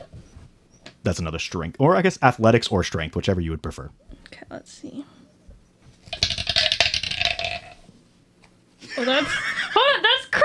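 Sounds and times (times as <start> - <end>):
speech: 1.0 - 5.2, 9.0 - 9.8
small hard dice clattering and rattling together: 6.0 - 7.8
laughter: 8.8 - 10.4.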